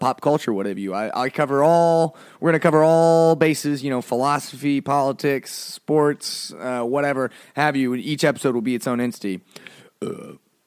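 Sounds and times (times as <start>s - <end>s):
speech: 0.0s - 10.4s
loud throaty burp: 10.0s - 10.4s.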